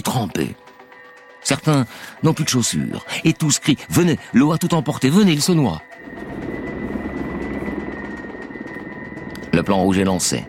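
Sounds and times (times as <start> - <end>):
speech: 0.1 - 0.6, 1.4 - 6.4, 9.6 - 10.4
helicopter engine whine: 5.2 - 10.4
helicopter rotor thudding arriving at a flood rescue scene: 6.0 - 9.9.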